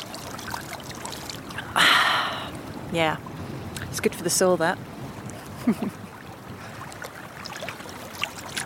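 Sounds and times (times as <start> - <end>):
hand scooping cold water from a stream: 0.0 - 1.7, 7.0 - 8.6
stream water flowing: 0.0 - 8.6
speech: 2.9 - 3.3, 4.0 - 4.9, 5.6 - 6.0.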